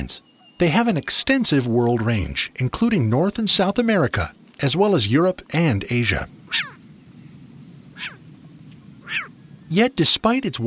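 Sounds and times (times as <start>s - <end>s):
speech: 0.0s - 6.7s, 9.1s - 10.6s
low steady rumble: 4.2s - 10.6s
short-eared owl giving harsh raspy barking calls: 6.1s - 9.8s.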